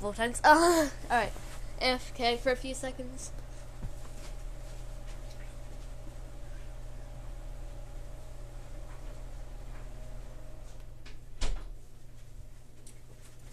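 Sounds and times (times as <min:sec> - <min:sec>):
speech: 0:00.0 - 0:03.4
steady low room hum: 0:00.0 - 0:13.5
room door shutting with a sharp thump: 0:11.0 - 0:11.8.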